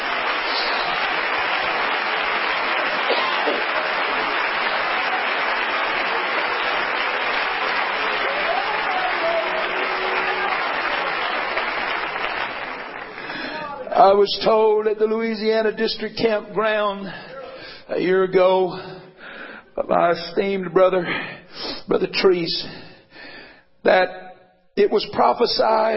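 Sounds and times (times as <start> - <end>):
audience clapping in worship: 0.0 - 13.9
speech: 14.0 - 17.3, 17.9 - 19.0, 19.8 - 21.3, 21.9 - 22.8, 23.8 - 24.2, 24.8 - 25.9.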